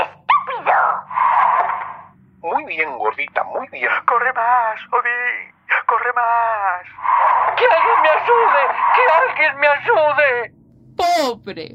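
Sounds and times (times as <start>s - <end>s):
low hum: 0.0s - 11.7s
dog yelping with pitch-bending whines: 0.3s - 1.9s, 7.2s - 9.4s
speech: 2.7s - 7.0s, 7.6s - 11.7s.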